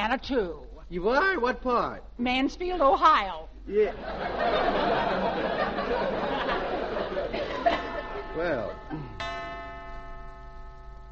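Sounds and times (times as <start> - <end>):
speech: 0.0 - 6.7, 8.4 - 9.2
laughter: 3.8 - 9.2
clock chime striking two o'clock: 6.7 - 11.1.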